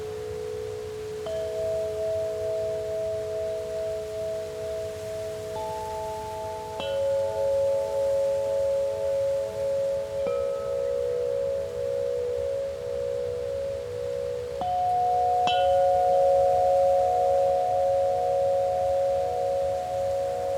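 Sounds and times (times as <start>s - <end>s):
soft steady breeze: 0.0s - 20.5s
wind chimes ringing: 0.0s - 20.5s.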